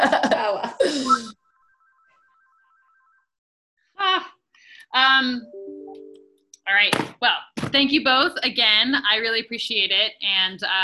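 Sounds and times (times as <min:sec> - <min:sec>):
laughter: 0:00.0 - 0:01.3
mobile phone ringtone playing a short electronic melody: 0:01.0 - 0:03.3
speech: 0:06.8 - 0:10.8.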